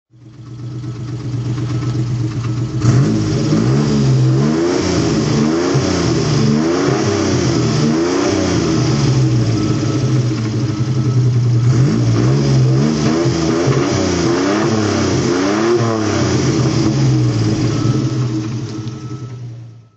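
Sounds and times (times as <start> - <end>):
1971 Citroën SM engine throttle: 0.2 - 19.9.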